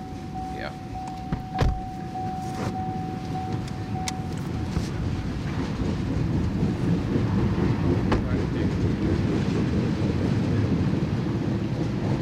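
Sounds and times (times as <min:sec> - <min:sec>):
brief sustained tonal whine: 0:00.0 - 0:07.2
long freight oil train with BNSF engine pulling oil tank cars rolling past in rain: 0:00.0 - 0:12.1
speech: 0:00.6 - 0:00.9.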